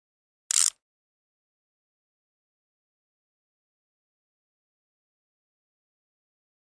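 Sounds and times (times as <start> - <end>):
flash gear clicks: 0.5 - 0.8.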